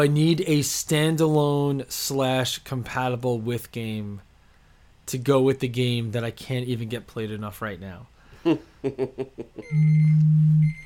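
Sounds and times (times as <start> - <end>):
speech: 0.0 - 4.3, 5.1 - 10.8
loud electronic alarm tone: 9.6 - 10.8.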